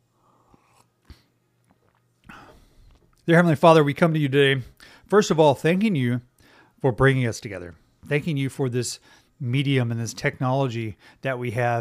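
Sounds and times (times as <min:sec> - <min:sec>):
soft mouth sounds: 0:00.1 - 0:03.2
person sipping hot coffee: 0:00.2 - 0:03.2
speech: 0:03.3 - 0:11.7.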